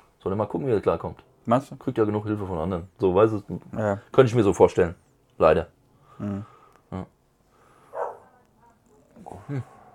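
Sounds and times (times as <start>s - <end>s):
speech: 0.2s - 7.2s, 9.5s - 9.7s
dogs barking outside at a distance: 7.9s - 8.4s.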